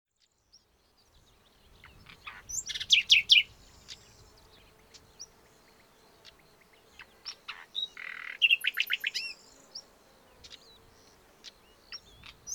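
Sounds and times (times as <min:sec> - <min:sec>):
common nightingale Luscinia megarhynchos song: 0:00.2 - 0:12.5.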